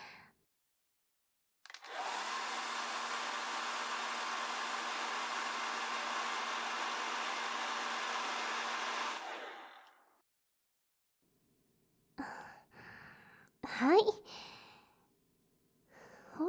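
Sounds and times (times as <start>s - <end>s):
hair dryer blowing: 1.7s - 10.1s
speech: 13.8s - 14.5s.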